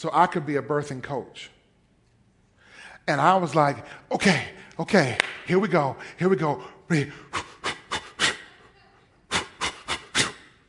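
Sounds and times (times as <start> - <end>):
speech: 0.0 - 1.6, 3.1 - 7.5
person imitating rhythmic birthing-class panting breaths: 6.0 - 10.6.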